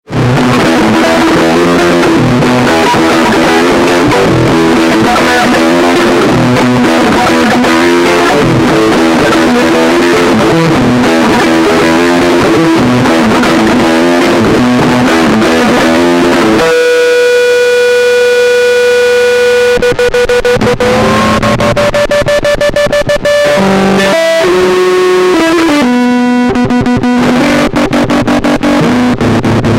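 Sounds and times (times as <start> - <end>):
metal guitar sample: 0.0 - 29.7.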